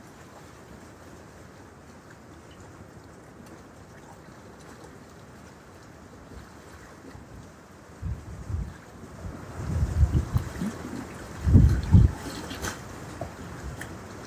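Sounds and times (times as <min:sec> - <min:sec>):
wind gusts by open water buffeting the microphone: 0:08.0 - 0:14.2.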